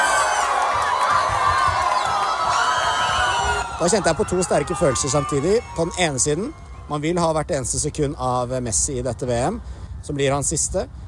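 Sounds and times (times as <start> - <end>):
football fans whooping and shouting: 0.0 - 7.2
huge stadium crowd of football fans cheering an equalising goal: 0.0 - 8.1
speech: 3.8 - 11.0.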